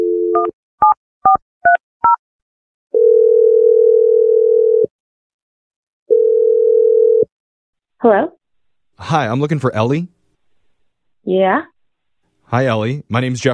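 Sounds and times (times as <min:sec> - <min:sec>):
telephone dial tone: 0:00.0 - 0:00.5, 0:02.9 - 0:04.9, 0:06.1 - 0:07.3
long steady telephone tones: 0:02.9 - 0:04.9, 0:06.1 - 0:07.3
speech: 0:08.0 - 0:08.3, 0:09.1 - 0:10.2, 0:11.2 - 0:11.7, 0:12.5 - 0:13.5.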